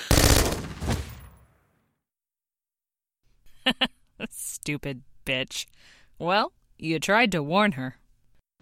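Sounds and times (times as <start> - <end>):
gunshots in a standoff with an infected person: 0.1 - 1.4
speech: 3.7 - 3.9, 4.6 - 8.0.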